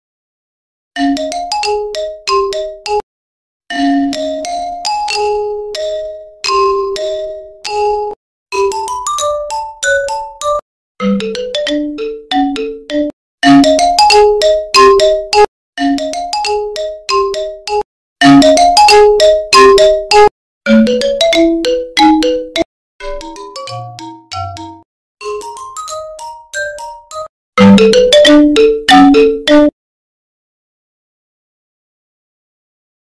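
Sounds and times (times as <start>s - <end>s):
Imo phone ringtone: 3.7s - 29.7s.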